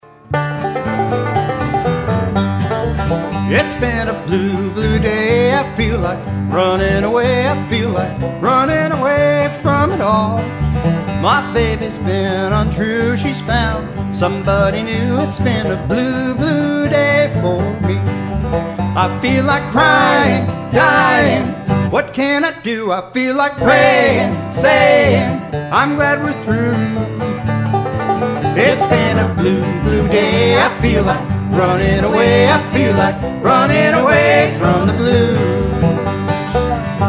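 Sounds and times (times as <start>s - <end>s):
country band playing: 0.0s - 22.8s, 23.6s - 37.0s.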